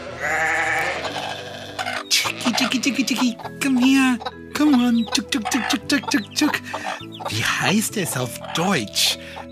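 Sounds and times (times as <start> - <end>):
sheep bleating on a farm: 0.0 - 3.5
farmyard background: 0.0 - 9.5
speech: 2.8 - 9.4.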